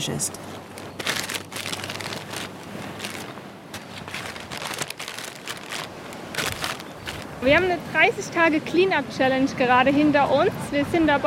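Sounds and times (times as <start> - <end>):
speech: 0.0 - 0.7, 7.4 - 11.2
plastic bag crinkling while carried along a beach in Bali: 0.7 - 7.4.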